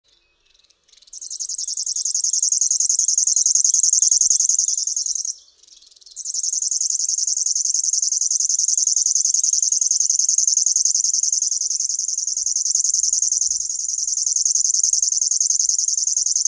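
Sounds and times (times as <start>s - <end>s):
River warbler singing a high rhythmic ticking buzz: 0.1s - 16.4s.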